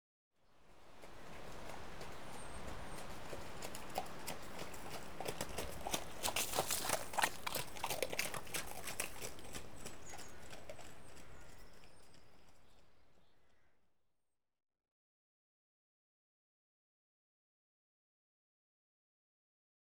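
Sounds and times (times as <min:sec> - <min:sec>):
horse cantering past on mud: 0:00.9 - 0:13.2.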